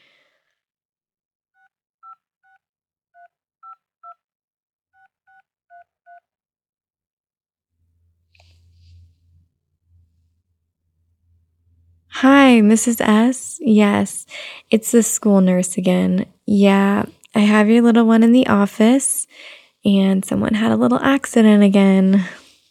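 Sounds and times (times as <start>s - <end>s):
low rumbling hum on the phone line: 7.8s - 14.1s
speech: 12.2s - 22.4s.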